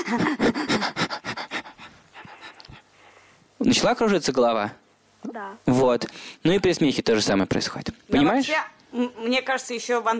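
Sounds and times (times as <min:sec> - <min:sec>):
people panting rapidly in a fast breathing exercise: 0:00.0 - 0:03.2
speech: 0:00.1 - 0:00.5, 0:03.7 - 0:10.1.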